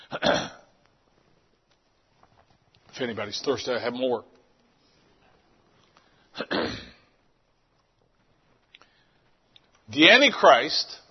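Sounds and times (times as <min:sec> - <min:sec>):
person clearing throat: 0:00.0 - 0:00.7, 0:06.4 - 0:07.1
speech: 0:03.0 - 0:04.4, 0:10.0 - 0:11.0.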